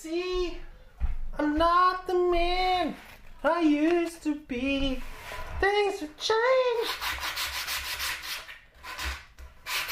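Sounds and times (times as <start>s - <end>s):
speech: 1.6s - 7.2s
sandpaper sanding a wooden edge: 6.8s - 9.9s.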